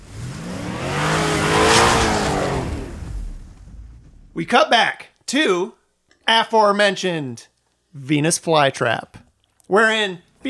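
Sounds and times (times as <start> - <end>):
car tires screeching: 0.0 - 3.8
car engine revving hard and accelerating: 0.0 - 4.4
speech: 4.4 - 10.4.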